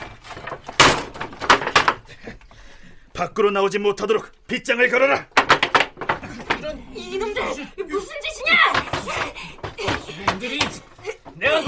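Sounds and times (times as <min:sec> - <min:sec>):
door rattling and banging as it settles: 0:00.0 - 0:02.3, 0:05.2 - 0:11.6
speech: 0:03.2 - 0:05.3.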